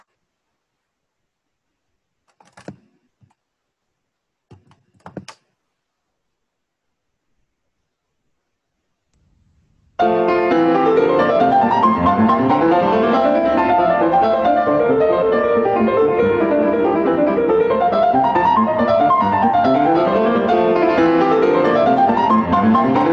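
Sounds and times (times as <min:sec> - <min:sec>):
solo piano playing a Baroque-style keyboard piece: 0:09.4 - 0:23.1.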